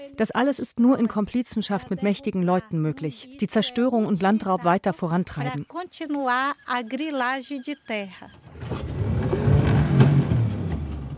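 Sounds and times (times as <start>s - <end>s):
speech: 0.1s - 8.7s
motorboat engine rumbling on a river: 8.4s - 11.1s.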